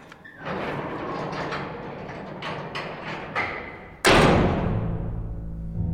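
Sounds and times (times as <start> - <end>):
heavy door closing: 0.1 - 5.8.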